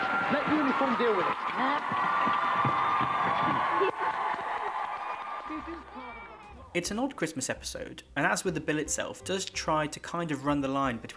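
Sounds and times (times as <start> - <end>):
large pantomime audience cheering and shouting: 0.0 - 6.5
speech: 0.3 - 4.3, 5.5 - 11.1.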